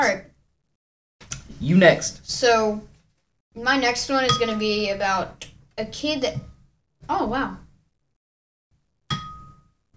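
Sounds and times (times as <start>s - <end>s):
speech: 1.6s - 2.9s, 3.6s - 6.5s, 7.1s - 7.6s
bell ding: 9.1s - 9.8s.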